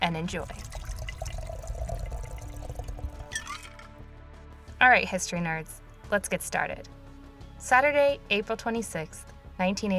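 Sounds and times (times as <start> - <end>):
speech: 0.1 - 0.8, 4.8 - 7.0, 7.6 - 9.9
cocktail of vodka, coffee liqueur, rum, cream liqueur and milk pouring into a glass: 0.4 - 4.0.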